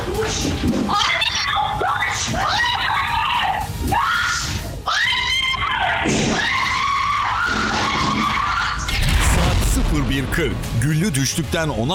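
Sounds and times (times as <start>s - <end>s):
speech: 0.1s - 1.3s, 10.1s - 11.9s
woman screaming, captured on security camera: 0.9s - 8.9s.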